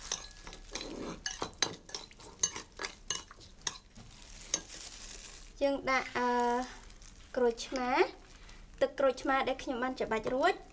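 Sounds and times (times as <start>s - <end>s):
spoon stirring a sweet-sour mixture, scraping and clinking against the container: 0.0s - 5.0s
speech: 5.6s - 6.8s, 7.4s - 8.2s, 8.8s - 10.7s.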